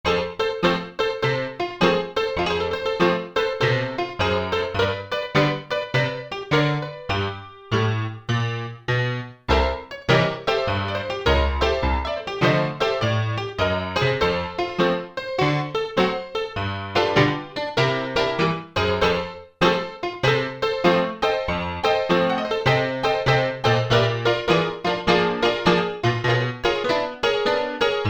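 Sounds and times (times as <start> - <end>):
stereo jazz piano on an Alesis synthesizer: 0.0 - 28.0.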